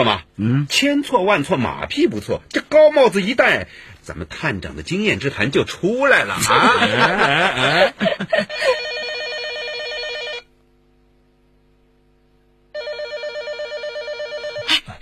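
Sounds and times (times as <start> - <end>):
speech: 0.0 - 8.8
laughter: 6.3 - 8.8, 14.6 - 15.0
telephone ringing in a home: 8.5 - 10.5, 12.8 - 14.7.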